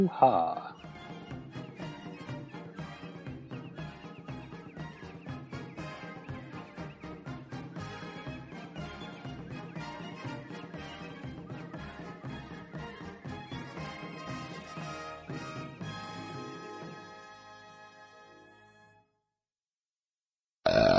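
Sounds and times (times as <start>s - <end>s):
speech: 0.0s - 0.6s
music: 0.4s - 19.3s
loud burp: 20.6s - 20.9s.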